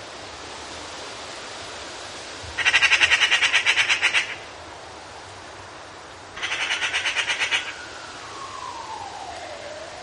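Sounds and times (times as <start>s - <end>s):
Eurasian magpie giving a dry rattling chatter: 2.6s - 4.4s, 6.4s - 7.7s.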